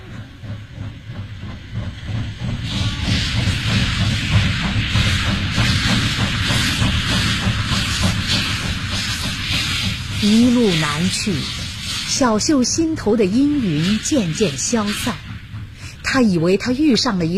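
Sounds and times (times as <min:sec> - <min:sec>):
steam passenger train chugging as it departs: 0:00.0 - 0:17.3
speech: 0:10.2 - 0:15.2, 0:16.1 - 0:17.3.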